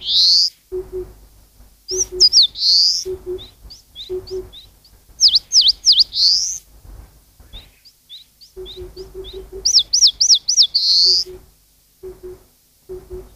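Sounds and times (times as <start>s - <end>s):
Eastern crowned warbler song: 0.0s - 13.3s
low double hoots: 0.7s - 1.2s, 3.0s - 4.6s, 8.6s - 9.9s, 11.0s - 13.3s.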